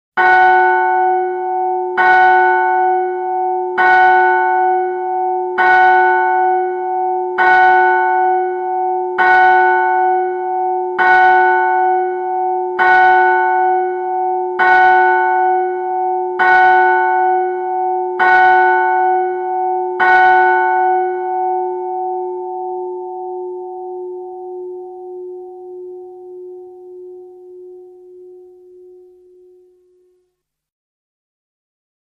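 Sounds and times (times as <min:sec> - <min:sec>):
medium church bell in F in a bell tower: 0:00.2 - 0:30.1.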